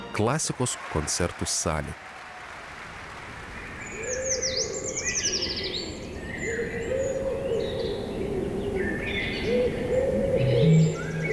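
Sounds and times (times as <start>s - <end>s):
speech: 0.1s - 2.1s
birds chirping and trilling outdoors in nature: 3.5s - 11.3s
low hooting tone: 9.5s - 11.3s.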